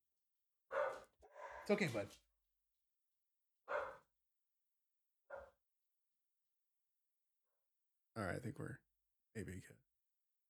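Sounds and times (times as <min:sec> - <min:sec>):
dog barking: 0:00.7 - 0:01.8, 0:03.7 - 0:04.1, 0:05.3 - 0:05.6
speech: 0:01.7 - 0:02.3, 0:08.2 - 0:09.9.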